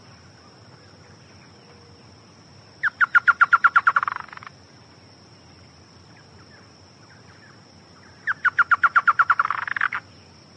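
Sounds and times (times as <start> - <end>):
Chotoy spinetail Schoeniophylax phryganophilus chattering phrases: 2.8 - 4.4, 8.3 - 10.0.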